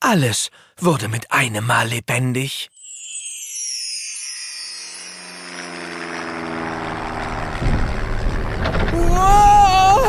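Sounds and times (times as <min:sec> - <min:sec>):
speech: 0:00.1 - 0:02.7
high whining tone: 0:02.8 - 0:10.0
airplane engine droning in flight: 0:05.0 - 0:10.0.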